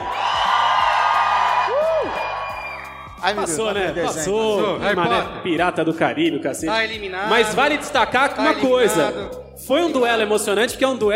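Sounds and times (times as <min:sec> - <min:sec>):
group of voices whooping to cast a vote in a game: 0:00.0 - 0:03.5
speech: 0:03.2 - 0:11.1.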